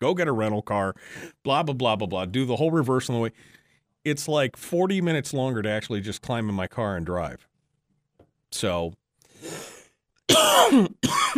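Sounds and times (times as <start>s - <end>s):
speech: 0.0s - 7.5s, 8.5s - 9.7s, 10.3s - 11.3s
person coughing and clearing their throat: 10.3s - 11.3s.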